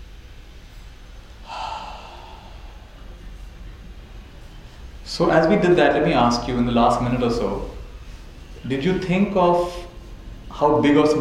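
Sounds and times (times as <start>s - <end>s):
hiss: 0.0s - 11.1s
deep breath: 1.4s - 3.6s
speech: 5.1s - 7.8s, 8.7s - 9.9s, 10.6s - 11.1s.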